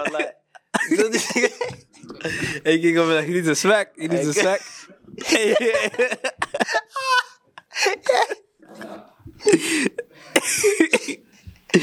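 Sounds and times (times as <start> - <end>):
laughter: 0.0 - 2.7, 4.1 - 11.1
speech: 0.0 - 7.2, 7.8 - 11.8
person coughing in rough bursts: 9.4 - 11.8.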